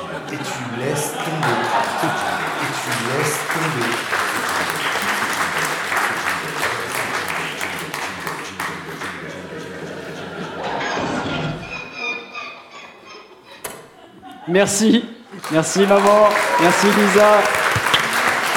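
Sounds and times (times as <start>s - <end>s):
crowd applauding: 0.0s - 9.3s, 15.3s - 18.5s
laughter: 0.0s - 18.5s
speech: 0.3s - 2.3s, 14.5s - 17.6s.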